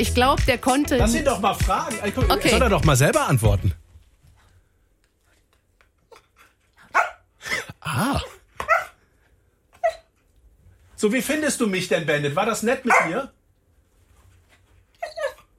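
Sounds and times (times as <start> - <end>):
speech: 0.0 - 3.8, 7.9 - 8.3, 11.0 - 13.4
TV dog barking and whimpering: 6.1 - 7.3, 8.2 - 9.0, 9.8 - 10.1, 12.9 - 13.2, 15.0 - 15.5.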